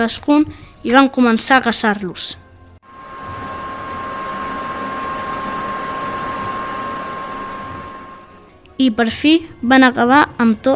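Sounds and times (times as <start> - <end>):
speech: 0.0 - 2.4, 8.8 - 10.7
vacuum cleaner-like machine sucking up viruses: 2.8 - 8.6.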